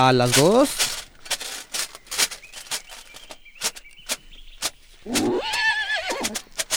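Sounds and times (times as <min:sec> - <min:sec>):
speech: 0:00.0 - 0:01.0
clattering hits: 0:00.0 - 0:06.7
faint creaking: 0:00.0 - 0:06.7
horse snorting: 0:00.0 - 0:06.7
horse whinnying: 0:05.0 - 0:06.7.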